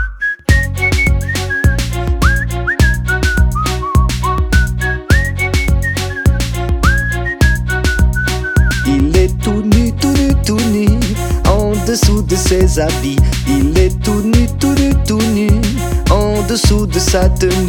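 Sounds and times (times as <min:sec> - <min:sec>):
whistled melody with sliding notes: 0:00.0 - 0:09.2
upbeat band backing with punchy drums and bass: 0:00.5 - 0:17.6
speech: 0:12.0 - 0:14.2, 0:16.5 - 0:17.6.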